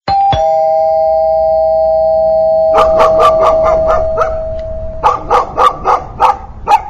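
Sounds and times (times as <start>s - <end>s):
doorbell: 0.1s - 5.3s
barking: 2.7s - 6.8s.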